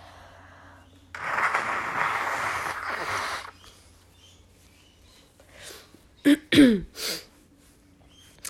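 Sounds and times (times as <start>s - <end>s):
person blowing their nose: 1.2s - 3.6s.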